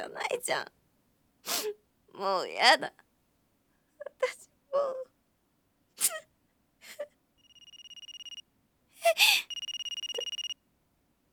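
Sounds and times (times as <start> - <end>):
speech: 0.4 - 0.8, 1.4 - 3.0, 4.2 - 5.1, 9.0 - 9.5
telephone ringing with an incoming call from a withheld number: 7.4 - 8.4, 9.4 - 10.6.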